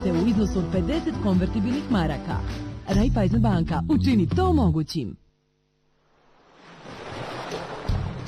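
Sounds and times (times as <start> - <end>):
speech: 0.2 - 5.2
ocean surf waves: 6.1 - 8.2.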